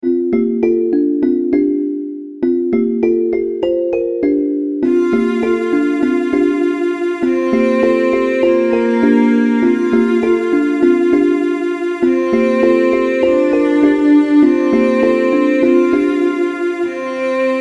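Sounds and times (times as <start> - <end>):
orchestral music loop: 0.0 - 17.6
string loops: 4.8 - 17.6.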